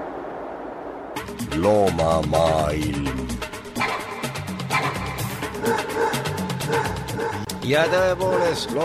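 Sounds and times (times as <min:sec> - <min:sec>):
speech: 0:01.2 - 0:03.3, 0:06.7 - 0:08.8
dog barking in yappy bursts: 0:03.8 - 0:07.5.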